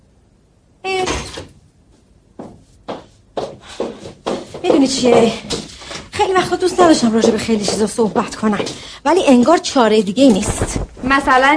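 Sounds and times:
door being opened in a home: 0.9s - 1.6s
speech: 4.6s - 5.6s, 6.3s - 11.5s.

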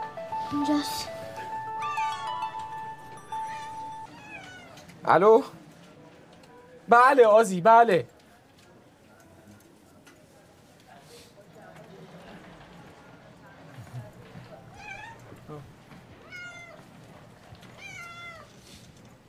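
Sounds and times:
speech: 0.5s - 1.2s, 5.0s - 5.6s, 6.9s - 8.1s
cat meowing: 4.1s - 5.0s, 14.7s - 15.6s, 16.2s - 16.9s, 17.7s - 18.6s.

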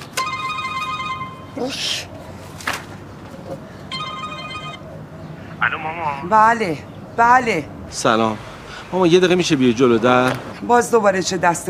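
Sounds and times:
telephone ringing with a warbling bell tone: 0.1s - 1.7s, 3.9s - 4.9s
speech: 1.6s - 2.1s, 5.6s - 11.6s.

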